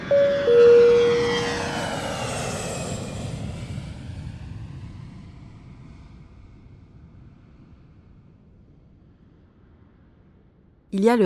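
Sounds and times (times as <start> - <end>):
airplane taking off: 0.0 - 7.8
speech: 11.0 - 11.2.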